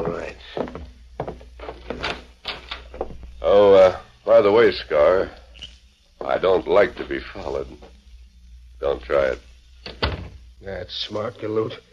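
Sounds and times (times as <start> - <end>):
door creaking as it swings open: 1.6 - 3.4, 9.8 - 10.4
speech: 3.9 - 5.4, 6.3 - 7.9, 8.8 - 10.0, 10.6 - 11.9.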